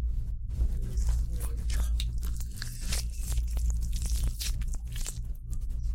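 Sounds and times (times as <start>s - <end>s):
steady low hum: 0.0s - 5.9s
orange being opened and peeled at a hotel: 0.5s - 5.8s.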